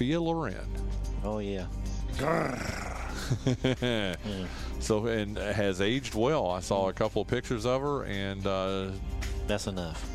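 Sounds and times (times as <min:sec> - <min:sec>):
speech: 0:00.0 - 0:10.1
man imitating a growl: 0:02.2 - 0:03.4
laughter: 0:02.2 - 0:04.6.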